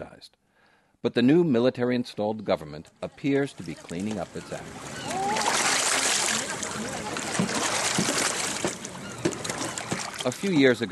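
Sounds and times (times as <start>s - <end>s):
speech: 0.0s - 0.4s, 1.0s - 5.1s, 10.2s - 10.9s
flowing river water: 3.0s - 10.9s
faint voices murmuring: 3.1s - 10.2s
clothes being beaten in river water: 5.3s - 10.5s.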